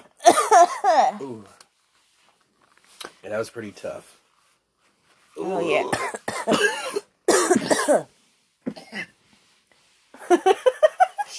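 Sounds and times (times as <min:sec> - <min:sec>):
person coughing harsh raspy coughs after a big dab: 0:00.2 - 0:01.2, 0:05.9 - 0:08.1
speech: 0:00.9 - 0:01.6, 0:03.2 - 0:04.2, 0:05.4 - 0:07.0, 0:07.9 - 0:08.2, 0:08.9 - 0:09.1, 0:10.3 - 0:10.7.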